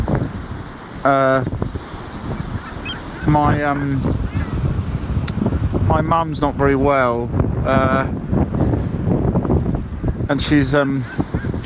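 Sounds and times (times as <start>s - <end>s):
seaside wind rushing in Dover: 0.0s - 11.6s
speech: 1.0s - 1.6s, 3.3s - 4.2s, 5.9s - 8.2s, 10.3s - 11.6s
loud honking bird calls: 1.9s - 4.8s, 11.0s - 11.6s.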